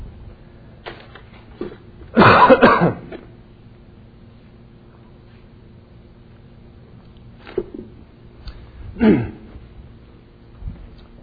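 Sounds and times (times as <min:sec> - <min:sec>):
low steady hum: 0:00.0 - 0:11.2
person coughing: 0:02.2 - 0:03.2, 0:09.0 - 0:09.6
throat noises: 0:08.9 - 0:09.6.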